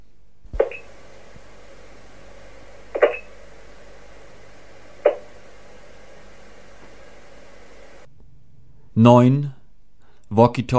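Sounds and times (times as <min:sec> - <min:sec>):
faint hiss on a long-distance telephone line: 0:00.0 - 0:08.1
short blips on a long-distance telephone line: 0:00.6 - 0:08.1
speech: 0:09.0 - 0:09.6, 0:10.3 - 0:10.7.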